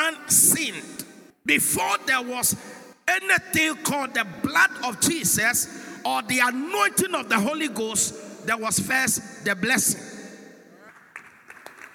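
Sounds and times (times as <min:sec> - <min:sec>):
preacher speaking in a church: 0:00.0 - 0:10.9
speech: 0:01.5 - 0:10.1
scattered handclaps from a church audience: 0:10.9 - 0:11.9.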